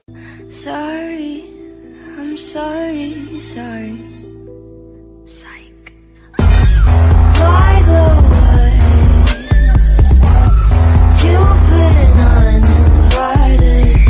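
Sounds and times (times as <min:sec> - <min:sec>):
theme song remix: 0:06.4 - 0:14.0.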